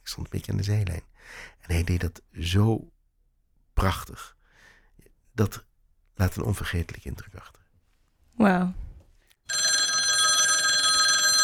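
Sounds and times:
speech: 0.1 - 3.0, 3.8 - 4.4, 5.4 - 7.6, 8.4 - 8.9
telephone bell ringing: 9.5 - 11.4.

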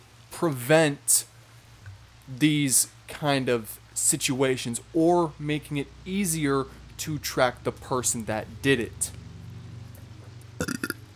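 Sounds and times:
speech: 0.4 - 1.3, 2.3 - 9.2
loud short rough burp: 10.6 - 11.0.

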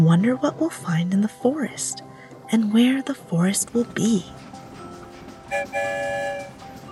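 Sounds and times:
speech: 0.0 - 4.6, 5.5 - 6.6
train whistle toots: 5.5 - 6.7.

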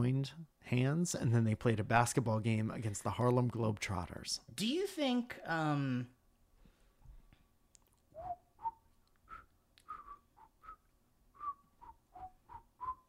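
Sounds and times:
speech: 0.0 - 6.2
person whistling a short bouncy melody: 8.2 - 13.0.

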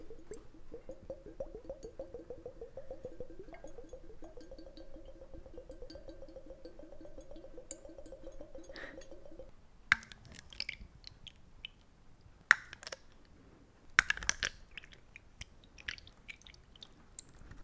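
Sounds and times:
sharp clinking water splashes: 0.0 - 10.5
rapidly pulsing water gurgle: 0.0 - 11.2
scattered water drips: 0.0 - 11.9, 12.5 - 13.2, 14.0 - 17.4.

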